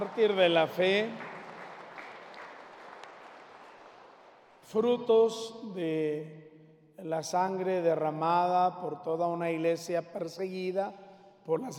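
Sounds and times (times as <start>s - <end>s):
speech: 0.0s - 1.3s, 4.7s - 11.7s
audience applause at a religious feast-day celebration: 0.0s - 4.6s.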